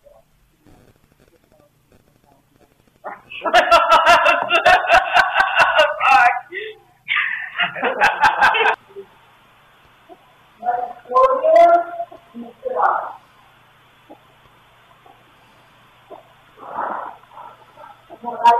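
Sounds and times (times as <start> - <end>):
steady faint hiss: 0.0 - 18.5
laughter: 3.3 - 8.8
raspy wheezing breaths on a ghost-hunting recording: 15.6 - 18.1.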